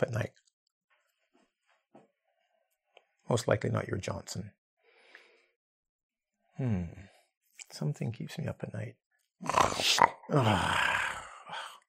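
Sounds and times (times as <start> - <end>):
speech: 0.0 - 0.4, 3.3 - 4.6, 6.6 - 7.1, 7.7 - 11.0
person vocally imitating snoring: 9.4 - 11.3.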